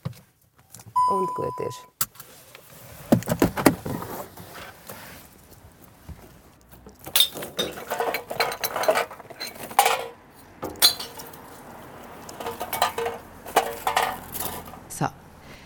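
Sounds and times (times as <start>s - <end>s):
speech: 1.1s - 1.9s
glass bottles clinking into a recycling bin: 6.8s - 14.9s.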